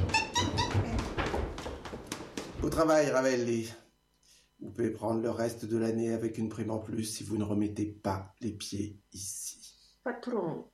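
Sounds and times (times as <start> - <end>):
dog whimpering: 0.0 - 1.0
speech: 2.6 - 3.8, 4.6 - 10.7.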